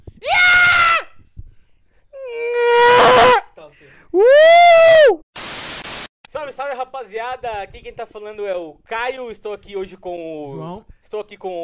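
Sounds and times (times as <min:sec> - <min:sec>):
loud scream: 0:00.2 - 0:01.1, 0:02.2 - 0:03.4, 0:04.2 - 0:05.2
speech: 0:06.7 - 0:11.6.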